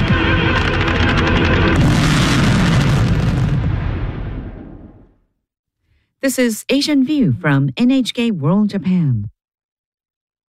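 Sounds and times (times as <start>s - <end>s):
fireworks exploding to praise Winter Olympics and World Cup athletes: 0.0s - 5.2s
speech: 6.2s - 9.4s.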